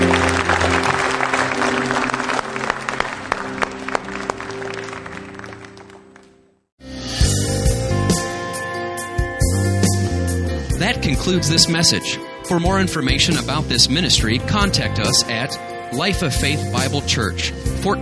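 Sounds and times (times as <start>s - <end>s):
audience applauding: 0.0s - 6.6s
tonal music: 0.0s - 18.0s
speech: 11.2s - 18.0s.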